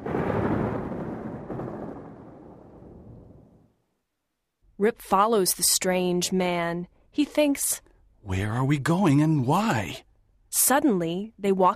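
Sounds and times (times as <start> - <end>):
deep roll of distant thunder: 0.0 - 3.7
speech: 4.8 - 11.7.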